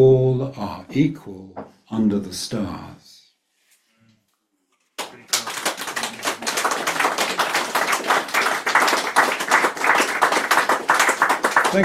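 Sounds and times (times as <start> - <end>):
speech: 0.0 - 3.0
audience applause after a poem reading: 5.0 - 11.8.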